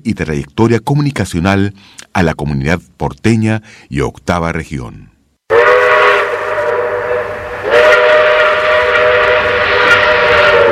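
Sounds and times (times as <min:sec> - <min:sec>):
speech: 0:00.0 - 0:05.1
steam train whistle: 0:05.5 - 0:10.7.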